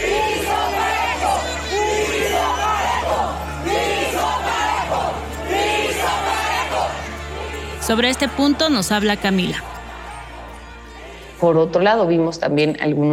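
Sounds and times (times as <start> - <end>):
crowd roar: 0.0 - 11.4
protesters chanting in unison at a politician: 0.0 - 11.9
speech: 7.9 - 9.7, 11.4 - 13.1.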